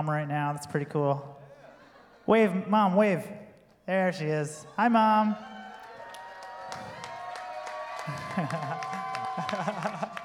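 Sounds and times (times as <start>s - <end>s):
speech: 0.0s - 1.4s, 2.3s - 5.5s, 8.1s - 10.2s
laughter: 1.5s - 2.3s, 8.0s - 10.2s
audience applauding: 5.5s - 10.2s.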